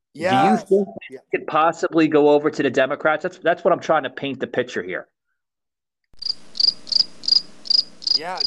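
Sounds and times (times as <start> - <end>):
speech: 0.2 - 5.1, 8.2 - 8.4
crickets chirping: 6.2 - 8.4.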